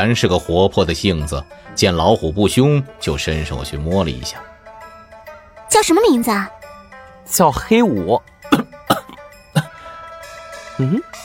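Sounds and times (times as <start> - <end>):
speech: 0.0 - 4.5, 5.7 - 6.6, 7.3 - 8.3, 10.8 - 11.2
person coughing after choking: 8.5 - 9.8.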